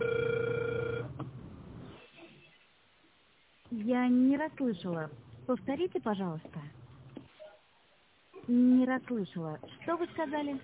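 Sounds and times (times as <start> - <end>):
telephone ringback tone while dialing: 0.0 - 1.1
speech: 3.9 - 6.8, 8.5 - 10.6.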